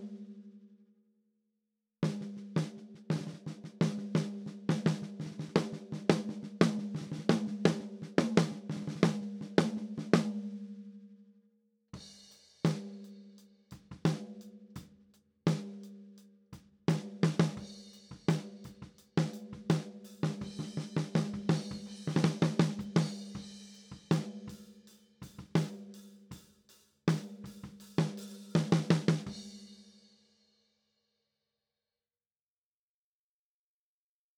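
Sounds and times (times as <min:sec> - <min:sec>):
13x6 maple snare drum recorded with SM-58 on top: 0:02.1 - 0:10.5, 0:12.0 - 0:13.1, 0:13.7 - 0:14.9, 0:15.5 - 0:15.9, 0:16.9 - 0:29.7.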